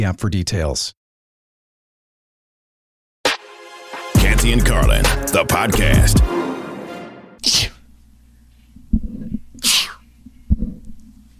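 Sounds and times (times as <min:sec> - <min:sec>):
speech: 0:00.0 - 0:01.0, 0:04.4 - 0:06.4
person sneezing: 0:07.4 - 0:07.8, 0:09.6 - 0:10.0.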